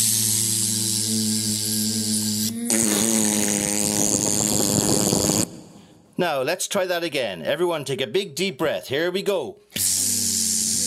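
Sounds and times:
voice imitating a fly's buzz: 0.0 - 5.5, 9.8 - 10.8
speech: 6.2 - 10.2.

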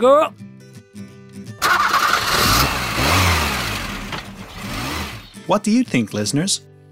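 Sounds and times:
speech: 0.0 - 0.4, 5.5 - 6.7
tractor diesel engine cranking and starting: 1.6 - 5.4.

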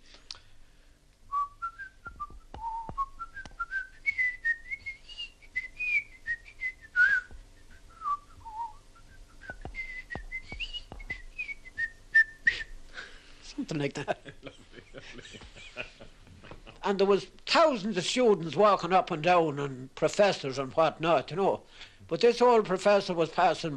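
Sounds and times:
faint noise: 0.0 - 23.7
person whistling a lively hornpipe melody: 1.3 - 12.8
speech: 13.7 - 15.9, 16.9 - 23.7
laughter: 13.9 - 16.8.

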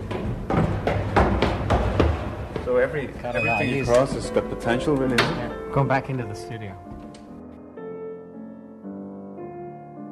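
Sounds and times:
footsteps on metal stairs: 0.0 - 5.4
speech: 2.7 - 6.9.

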